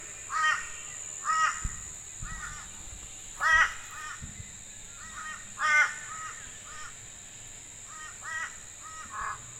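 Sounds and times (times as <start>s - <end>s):
steady high whine: 0.0s - 9.5s
group of crows cawing: 0.3s - 2.7s, 3.4s - 4.2s, 5.0s - 7.0s, 7.9s - 9.5s.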